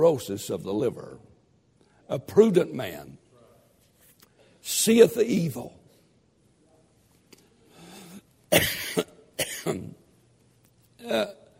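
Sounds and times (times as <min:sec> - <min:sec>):
speech: 0:00.0 - 0:01.3, 0:02.1 - 0:03.2, 0:04.6 - 0:05.8, 0:08.5 - 0:09.9, 0:11.1 - 0:11.4
man coughing harshly: 0:08.5 - 0:10.0.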